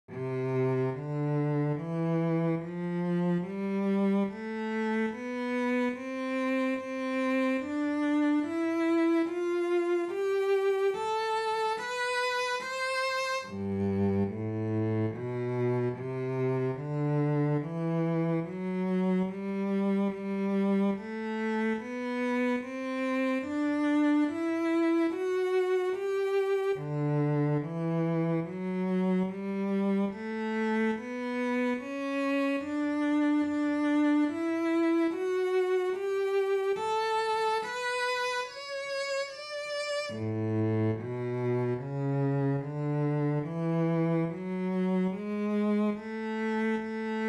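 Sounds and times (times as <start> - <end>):
bass playing major scales over two octaves: 0.1 - 47.2.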